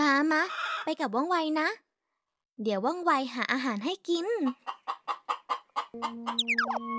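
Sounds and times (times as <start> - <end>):
speech: 0.3 - 1.8, 2.6 - 4.9, 6.0 - 6.9
thin hen clucking: 4.4 - 6.8
sliding squawky calls: 4.8 - 6.8.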